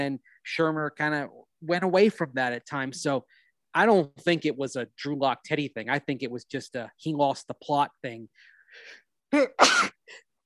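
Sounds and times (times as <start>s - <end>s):
speech: 0.0s - 10.2s
faint breathing: 8.3s - 9.2s
person sneezing: 9.3s - 10.3s.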